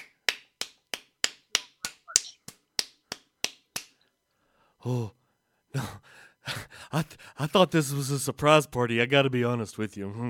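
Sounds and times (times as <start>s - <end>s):
single person clapping hands: 0.0s - 4.0s
speech: 4.8s - 10.2s.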